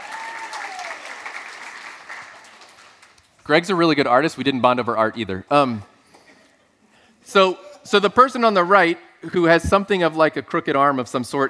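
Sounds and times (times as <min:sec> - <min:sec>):
audience applause: 0:00.0 - 0:03.2
speech: 0:03.5 - 0:05.9, 0:07.3 - 0:11.4.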